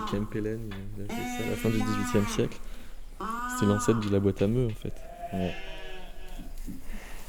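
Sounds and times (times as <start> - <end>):
newborn lambs bleating: 0.0 - 0.4, 1.1 - 4.3, 5.0 - 6.5
speech: 0.1 - 5.8, 6.7 - 7.0.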